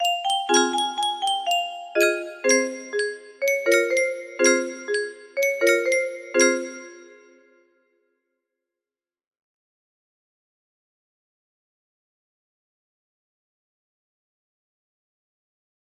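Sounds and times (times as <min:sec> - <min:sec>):
music box: 0:00.0 - 0:07.6.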